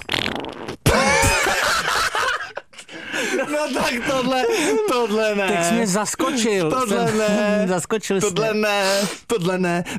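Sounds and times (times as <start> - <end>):
squeaky drawn-out fart: 0.0 - 1.0
laughter: 0.9 - 8.7
speech: 3.5 - 9.9.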